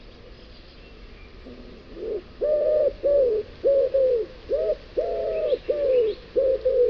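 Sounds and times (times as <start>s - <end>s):
faint twittering of small birds: 0.0s - 6.8s
common wood pigeon song, deep muffled coo notes: 1.5s - 6.8s.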